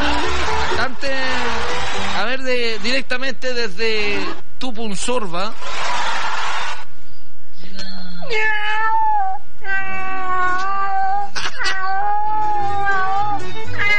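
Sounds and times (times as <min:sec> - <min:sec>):
laughter: 0:00.0 - 0:02.4, 0:05.6 - 0:06.8
speech: 0:02.5 - 0:06.0
skinny hairless cat meowing hoarsely: 0:08.2 - 0:13.9.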